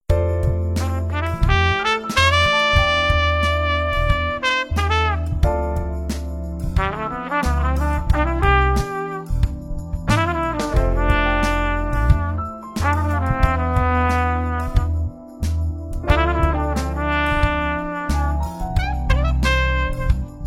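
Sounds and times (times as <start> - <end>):
fruity trumpet: 0.7 - 20.4.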